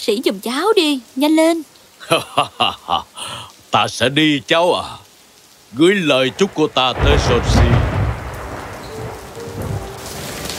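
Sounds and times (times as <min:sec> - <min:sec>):
speech: 0:00.0 - 0:05.0, 0:05.7 - 0:07.9
heavy rain from a large storm pouring over a city at night: 0:00.0 - 0:10.5
laughter: 0:02.0 - 0:03.1.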